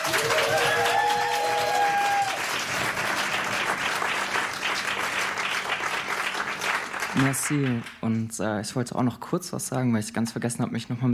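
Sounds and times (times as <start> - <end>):
audience applause: 0.0 - 8.0
speech: 7.2 - 11.1.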